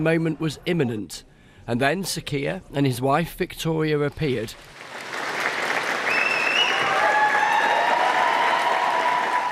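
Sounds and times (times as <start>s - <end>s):
speech: 0.0s - 4.8s
staff applauding outdoors in the street: 4.6s - 9.5s
faint whistles and cheers: 6.0s - 9.5s.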